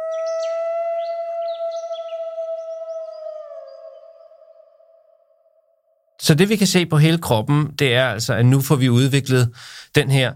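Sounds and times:
faint bird chirps: 0.0s - 5.2s
single wolf howling: 0.0s - 5.3s
speech: 6.2s - 10.3s.

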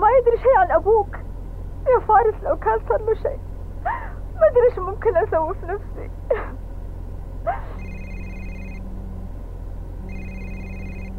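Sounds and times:
constant low hum: 0.0s - 11.1s
speech: 2.1s - 3.5s, 4.4s - 6.6s, 7.4s - 7.8s
electronic telephone ringtone signalling an incoming call: 7.7s - 8.8s, 10.1s - 11.1s.

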